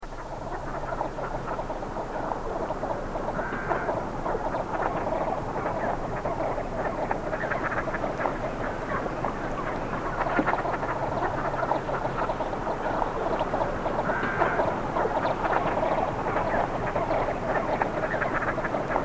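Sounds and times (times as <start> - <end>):
birds: 0.0 - 19.0.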